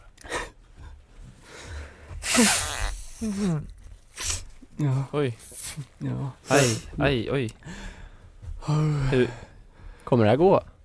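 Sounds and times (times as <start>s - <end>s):
nose being blown: 2.2s - 3.5s, 4.2s - 4.5s
speech: 2.4s - 3.8s, 4.8s - 8.0s, 8.7s - 9.5s, 10.1s - 10.7s.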